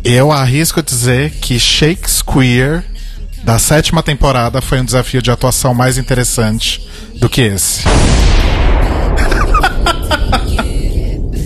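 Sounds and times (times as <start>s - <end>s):
speech: 0.1s - 8.4s
bomb explosion sound effect: 7.8s - 11.4s
people laughing and chuckling: 9.2s - 10.9s.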